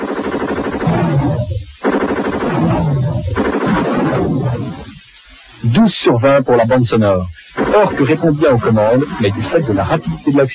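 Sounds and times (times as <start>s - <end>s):
machine gun fire in an Amiga video game: 0.0s - 4.8s, 7.6s - 8.7s
speech: 5.9s - 10.5s.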